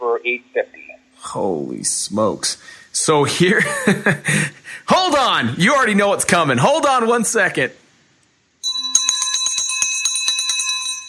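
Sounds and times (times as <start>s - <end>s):
speech: 0.2s - 7.8s
laughter: 3.3s - 4.6s
bright metal victory bell ringing rapidly: 8.6s - 11.0s.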